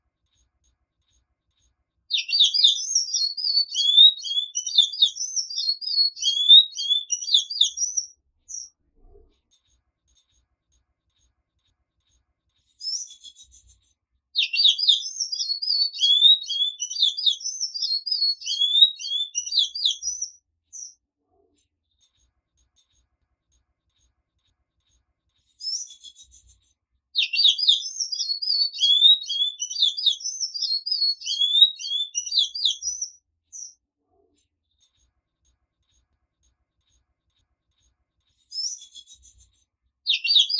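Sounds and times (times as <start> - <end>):
Sanhaco Azul singing: 2.1 - 8.7, 14.4 - 21.0, 27.2 - 33.8, 40.1 - 40.5.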